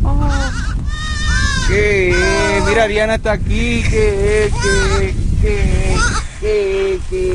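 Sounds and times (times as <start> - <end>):
newborn auburn goat kid bleating: 0.2 - 2.8, 4.5 - 5.1
speech: 2.7 - 7.3.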